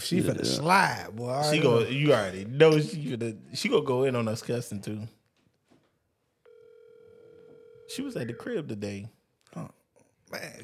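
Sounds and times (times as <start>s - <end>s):
quiet noise: 0.0s - 10.6s
speech: 0.1s - 5.2s, 7.9s - 10.6s
electronic phone ring tone on speakerphone: 6.4s - 8.5s.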